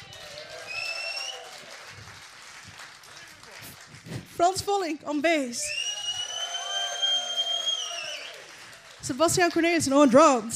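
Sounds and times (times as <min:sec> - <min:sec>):
audience applauding at a jazz concert: 0:00.0 - 0:04.3, 0:05.7 - 0:09.9
high whistle: 0:00.6 - 0:01.6, 0:05.6 - 0:08.5
speech: 0:04.1 - 0:05.8, 0:09.1 - 0:10.5.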